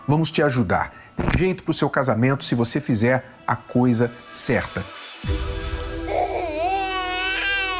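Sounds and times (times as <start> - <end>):
speech: 0.1 - 5.5
infant crying: 6.0 - 7.7.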